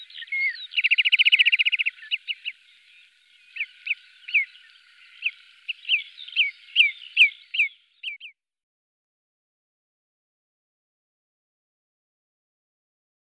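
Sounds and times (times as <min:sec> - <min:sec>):
Marsh Sandpiper calls: 0:00.0 - 0:08.2.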